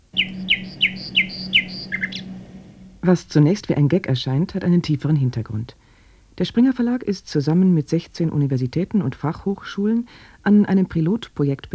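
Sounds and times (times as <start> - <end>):
bird call played back from a digital reference: 0.0 - 3.2
low hum: 0.0 - 3.7
speech: 3.0 - 5.8, 6.4 - 11.7.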